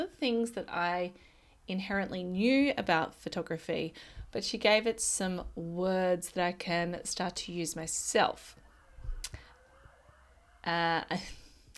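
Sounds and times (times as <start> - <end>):
speech: 0.0 - 8.6, 10.6 - 11.4
short siren blast of a passing police car: 8.0 - 11.2.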